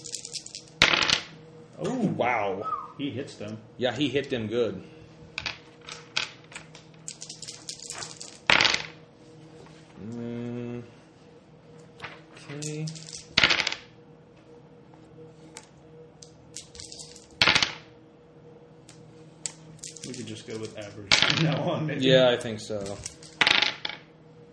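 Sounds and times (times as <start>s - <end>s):
handful of dice rolled across a hard surface for a game: 0.0s - 1.3s, 5.4s - 9.0s, 12.6s - 13.9s, 16.6s - 17.8s, 19.4s - 21.4s, 22.8s - 24.0s
speech: 1.8s - 5.0s, 20.5s - 23.1s.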